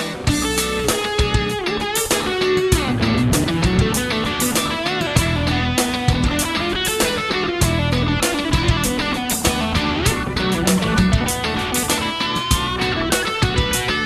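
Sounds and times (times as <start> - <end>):
funk electric guitar humbucker sustain: 0.1 - 14.0.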